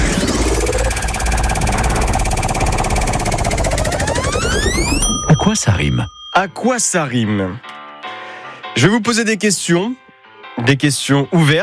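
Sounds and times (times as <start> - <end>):
game show prize wheel spinning: 0.2 - 6.5
speech: 5.5 - 7.8, 8.8 - 11.6.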